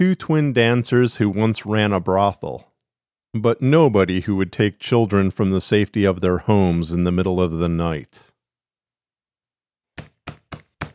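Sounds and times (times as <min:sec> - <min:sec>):
speech: 0:00.0 - 0:02.7, 0:03.3 - 0:08.3
sharp knocking on an RV door: 0:10.0 - 0:10.9.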